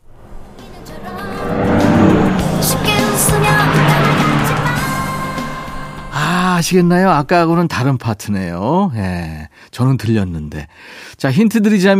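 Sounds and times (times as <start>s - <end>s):
car passing by with steady engine roar: 0.0s - 7.3s
speech: 6.7s - 11.9s.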